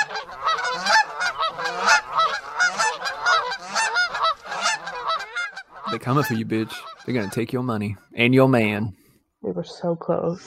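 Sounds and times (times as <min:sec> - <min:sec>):
flock of geese honking: 0:00.0 - 0:08.2
speech: 0:06.0 - 0:10.4.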